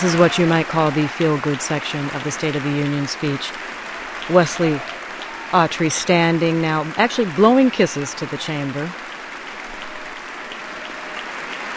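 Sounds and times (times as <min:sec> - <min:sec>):
speech: 0:00.0 - 0:09.1
many hands applauding in a legislative chamber during a State of the Union address: 0:00.0 - 0:11.7.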